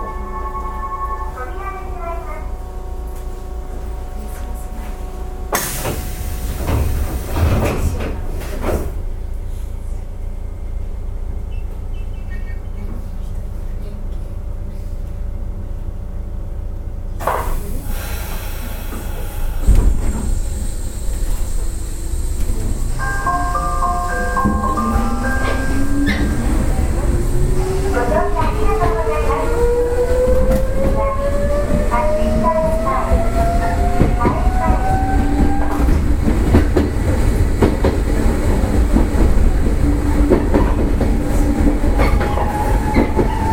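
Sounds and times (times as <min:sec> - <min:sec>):
electric commuter train running, interior rumble: 0:00.0 - 0:43.5
electric commuter train clattering: 0:02.9 - 0:09.5, 0:17.2 - 0:43.5.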